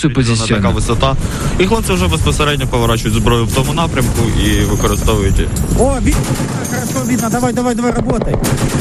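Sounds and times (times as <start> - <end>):
speech: 0.0 - 8.7
artillery unit gunfire shooting at a drone at night: 3.4 - 8.7.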